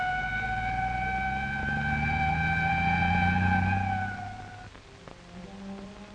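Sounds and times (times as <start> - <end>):
ambulance siren wailing: 0.0 - 4.8
deep ambulance engine rumble: 0.0 - 6.0.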